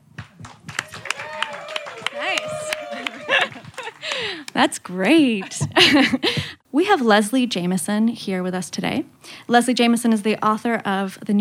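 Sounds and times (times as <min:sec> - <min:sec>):
live audience clapping: 0:00.0 - 0:04.7
lively hum of voices and cheering: 0:00.4 - 0:04.6
laughter: 0:01.4 - 0:04.5, 0:05.2 - 0:06.6
speech: 0:04.6 - 0:11.3.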